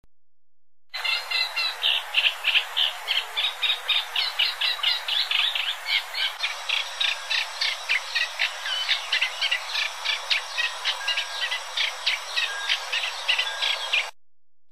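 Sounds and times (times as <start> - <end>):
reed warbler: 1.0 - 14.2.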